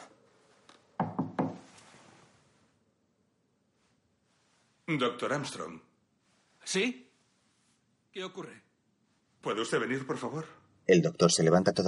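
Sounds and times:
soft hiss: 0:00.0 - 0:11.8
knocking on a bedroom door in the morning: 0:01.0 - 0:01.7
speech: 0:04.9 - 0:05.9, 0:06.6 - 0:07.1, 0:08.2 - 0:08.7, 0:09.4 - 0:11.8.

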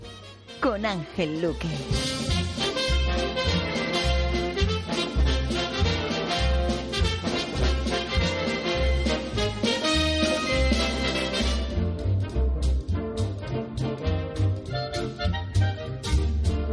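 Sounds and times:
classic Hollywood musical orchestral swing music: 0:00.0 - 0:16.7
speech: 0:00.7 - 0:02.6.

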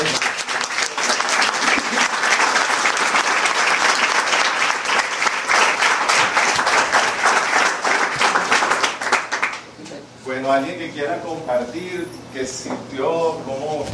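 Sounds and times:
group applause in a hall: 0:00.0 - 0:09.7
speech: 0:10.6 - 0:13.9.

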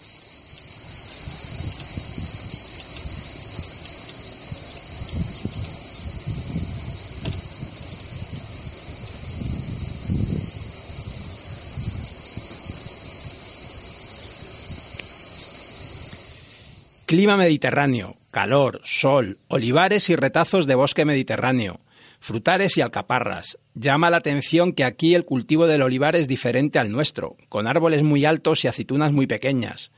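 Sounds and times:
wind gusts: 0:00.0 - 0:18.4
dense continuous buzz of cicadas: 0:00.0 - 0:29.9
speech: 0:17.2 - 0:29.9.

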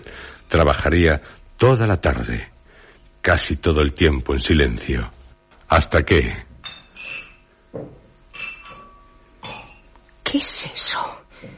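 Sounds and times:
speech: 0:00.0 - 0:02.5, 0:03.2 - 0:06.5, 0:07.7 - 0:08.0, 0:10.3 - 0:11.5
glass bottles clinking together: 0:06.6 - 0:10.0.

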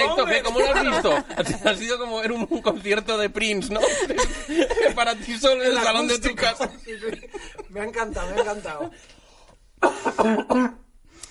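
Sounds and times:
laughter: 0:00.0 - 0:09.0
speech: 0:00.1 - 0:09.2, 0:09.8 - 0:10.8
person coughing throaty loud coughs: 0:09.8 - 0:10.9.

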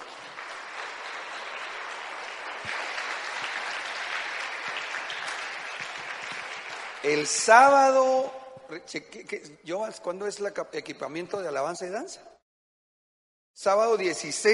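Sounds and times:
audience clapping hands: 0:00.0 - 0:08.1
speech: 0:07.0 - 0:12.3, 0:13.6 - 0:14.5.

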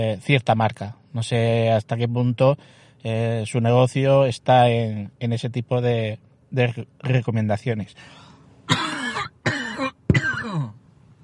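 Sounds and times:
speech: 0:00.0 - 0:08.8
loud harsh raspy coughs: 0:08.7 - 0:10.8.

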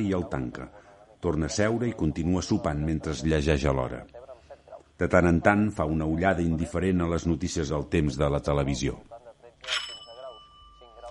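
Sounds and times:
speech: 0:00.0 - 0:04.2, 0:05.0 - 0:09.9
doorbell ringing at a patio door: 0:09.6 - 0:11.0.

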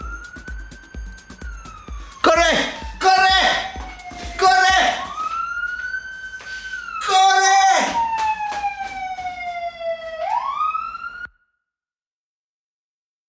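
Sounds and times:
police car siren wailing as a patrol car passes: 0:00.0 - 0:11.4
man shouting in short urgent bursts: 0:02.2 - 0:05.1, 0:07.0 - 0:08.0.

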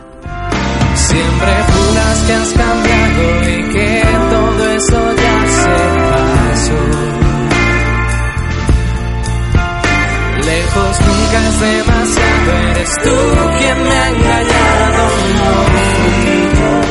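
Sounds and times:
bright layered synths of a song remix: 0:00.0 - 0:16.8
full bass of a song remix: 0:00.0 - 0:16.8
sung vocal line in a song remix: 0:00.9 - 0:08.0, 0:10.4 - 0:16.8
speech: 0:01.1 - 0:04.2
steady punchy beat of a song remix: 0:01.1 - 0:16.8.

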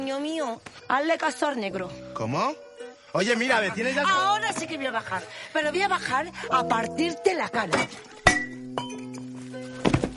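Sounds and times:
speech: 0:00.2 - 0:08.1
glass champagne bottle kicked and falling: 0:07.7 - 0:10.1.

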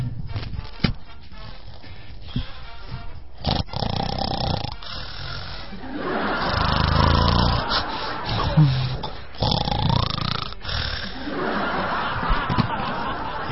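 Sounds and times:
person snoring: 0:03.4 - 0:11.4
laughter: 0:05.6 - 0:09.4, 0:10.6 - 0:13.4.

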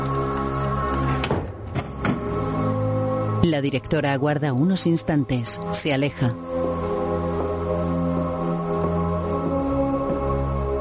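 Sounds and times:
steady humming music: 0:00.0 - 0:10.8
door shutting with short knocks: 0:01.0 - 0:02.3
speech: 0:03.4 - 0:06.7.

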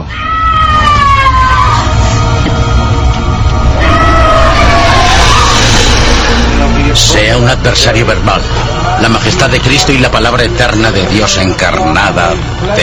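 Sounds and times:
beast screaming and howling during a ritual: 0:00.0 - 0:07.4
dense rumbling background: 0:00.7 - 0:12.8
speech: 0:07.4 - 0:12.8.

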